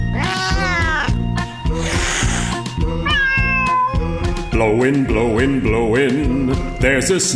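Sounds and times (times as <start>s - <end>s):
cat meowing: 0.1s - 1.2s, 1.8s - 4.3s
speech: 4.8s - 7.3s.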